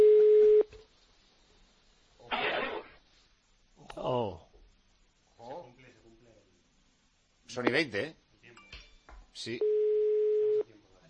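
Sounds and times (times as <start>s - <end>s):
telephone line tone on an unanswered call: 0.0s - 0.7s, 9.6s - 10.7s
short burst of rough noise: 2.3s - 3.0s
speech: 7.6s - 8.2s, 9.4s - 9.7s.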